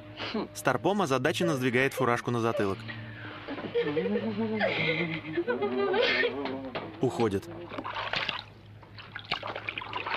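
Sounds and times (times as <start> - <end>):
speech: 0.3 - 3.0, 3.7 - 8.2
laughter: 3.4 - 6.7
water sloshing and splashing as a monkey washes a towel in a water-filled bathtub: 7.1 - 10.1.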